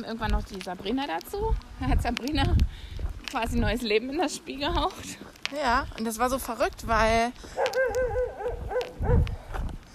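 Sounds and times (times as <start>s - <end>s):
speech: 0.0s - 8.4s
off-leash dog barking in high-pitched yips and whiny barks: 7.6s - 9.3s.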